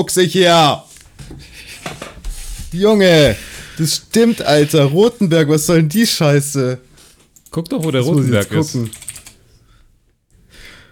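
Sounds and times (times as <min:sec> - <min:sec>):
speech: 0:00.0 - 0:01.5, 0:02.7 - 0:06.9, 0:07.5 - 0:09.0
typing on a computer keyboard: 0:07.4 - 0:09.4.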